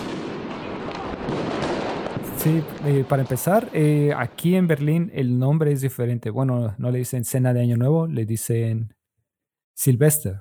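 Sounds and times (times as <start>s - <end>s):
fireworks exploding on New Year's Eve in Berlin Germany: 0.0s - 5.0s
speech: 2.4s - 9.0s, 9.8s - 10.3s.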